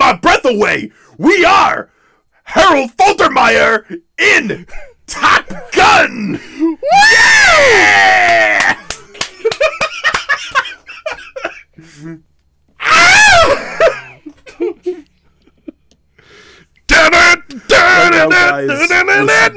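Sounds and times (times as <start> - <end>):
speech: 0.5 - 8.8, 11.8 - 13.9, 17.0 - 19.5
man screaming over a breaking-up internet call: 5.1 - 8.9, 12.8 - 14.0, 16.9 - 19.5
laughter: 8.5 - 12.2, 13.4 - 15.9.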